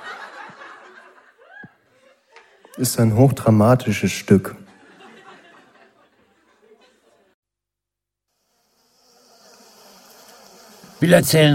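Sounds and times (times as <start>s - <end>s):
laughter: 0.0s - 7.4s
speech: 2.8s - 4.6s, 11.0s - 11.5s
many honey bees buzzing at a hive entrance: 8.6s - 11.5s.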